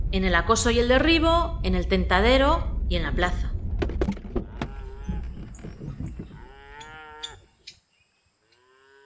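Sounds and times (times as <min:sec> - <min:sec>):
speech: 0:00.1 - 0:03.5
shuffling and knocking: 0:03.6 - 0:06.9
cattle mooing in a bullfighting ranch corral: 0:04.4 - 0:07.5, 0:08.5 - 0:09.0.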